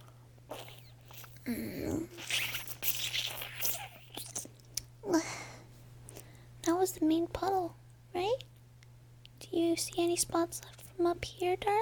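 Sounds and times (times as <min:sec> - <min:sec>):
steady low electrical hum: 0:00.0 - 0:11.7
wet slurping and sucking: 0:00.5 - 0:04.5
speech: 0:01.5 - 0:01.8, 0:06.9 - 0:08.5, 0:09.6 - 0:11.7.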